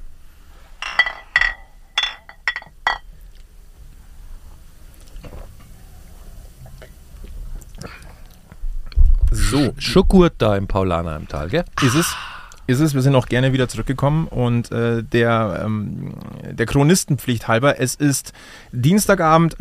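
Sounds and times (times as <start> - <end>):
beer glasses clinking in a toast: 0.8 - 3.1
speech: 9.5 - 19.5.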